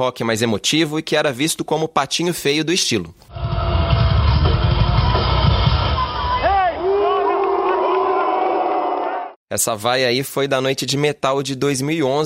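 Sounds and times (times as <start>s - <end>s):
speech: 0.0s - 3.4s, 9.5s - 12.2s
large concert crowd booing a band: 3.4s - 9.4s
piercing whistles from a concert crowd: 5.0s - 6.8s
shouted calls from a concert crowd: 5.8s - 9.4s.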